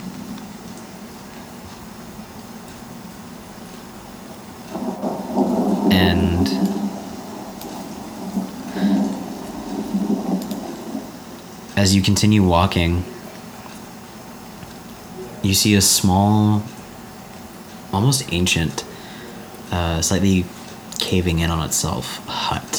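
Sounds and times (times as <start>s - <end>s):
light drizzle in a rainforest: 0.0s - 22.7s
low rumble of distant thunder: 2.3s - 13.3s
speech: 6.2s - 6.8s, 11.8s - 13.2s, 15.4s - 16.8s, 17.9s - 18.9s, 19.7s - 22.7s.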